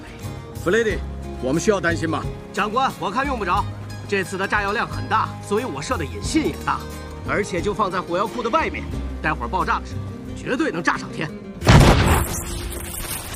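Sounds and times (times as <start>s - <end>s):
people talking: 0.7s - 9.8s
ship cannon blast: 11.6s - 13.1s.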